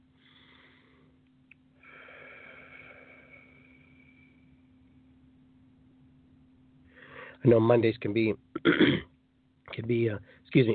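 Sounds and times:
speech: 7.4s - 9.1s, 9.8s - 10.7s
person clearing throat with a rough breathy rasp: 8.6s - 9.1s.

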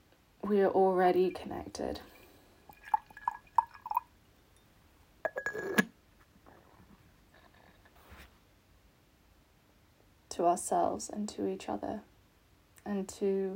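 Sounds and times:
speech: 0.5s - 2.1s, 10.4s - 12.1s, 12.9s - 13.5s
tea pouring into a ceramic bowl: 0.5s - 4.1s
ceramic clink: 4.6s - 5.9s.

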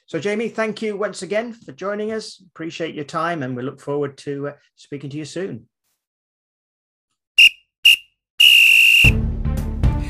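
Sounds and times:
speech: 0.1s - 5.7s
referee's final whistle blasts: 7.4s - 9.2s.

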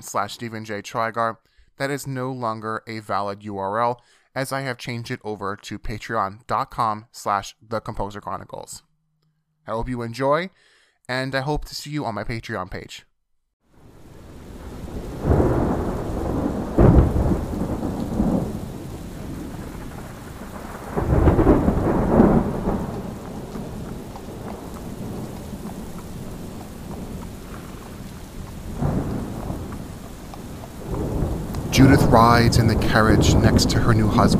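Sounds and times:
speech: 0.0s - 8.9s, 9.6s - 13.1s, 32.2s - 34.3s
deep rolling rumbles of thunder: 13.8s - 34.3s
steady heavy rain hissing in a thunderstorm: 13.8s - 34.3s.

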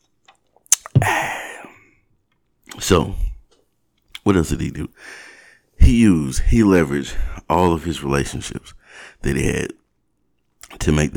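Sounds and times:
sip of a drink: 0.7s - 1.7s
breathy swallow and exhale: 0.7s - 1.8s
speech: 2.8s - 3.2s, 4.2s - 9.8s, 10.8s - 11.1s.

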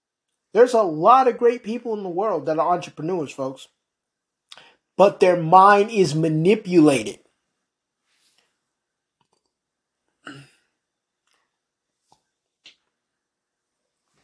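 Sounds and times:
speech: 0.6s - 3.8s, 5.0s - 7.2s
quiet breathing: 4.5s - 4.9s
loud person burping: 10.2s - 10.7s.

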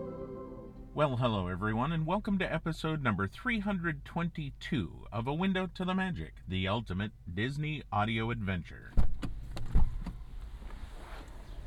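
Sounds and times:
speech: 1.0s - 9.0s
car door clicks: 8.9s - 10.3s.

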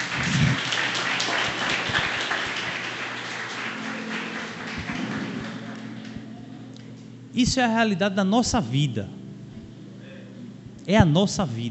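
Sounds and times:
crowd applauding: 0.0s - 6.5s
speech: 7.4s - 9.2s, 10.9s - 11.6s.

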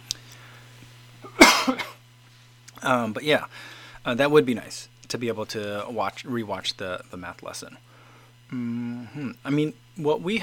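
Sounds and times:
faint low hum: 0.0s - 10.4s
person with a throat irritation giving a short harsh cough: 1.2s - 2.0s
speech: 2.8s - 7.9s, 8.5s - 10.4s.

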